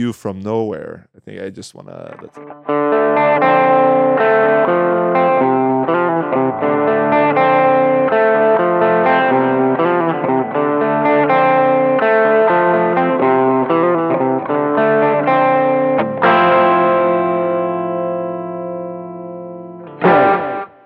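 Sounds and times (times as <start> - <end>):
speech: 0.0 - 4.9
Swedish hard rock band's distorted electric guitar riff in 70s rock style: 2.1 - 20.8.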